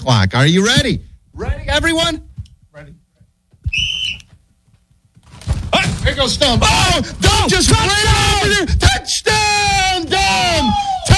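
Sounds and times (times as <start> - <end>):
speech: 0.0 - 3.0, 6.0 - 11.1
rustling: 3.6 - 8.6
referee-style whistle blast starting a play clock in a casual football game: 3.7 - 4.3.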